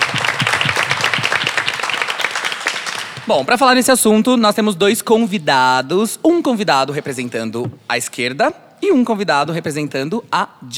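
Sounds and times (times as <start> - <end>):
studio audience applause: 0.0 - 3.6
speech: 3.3 - 10.7.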